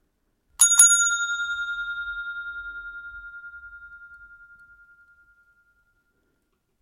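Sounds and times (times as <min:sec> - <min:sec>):
hotel reception desk bell ringing: 0:00.6 - 0:06.1.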